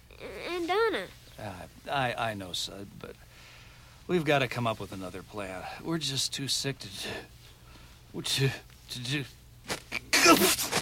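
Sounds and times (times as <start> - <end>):
speech: 0.9 - 3.5, 4.1 - 7.4, 8.1 - 10.7
person sneezing: 9.7 - 10.8.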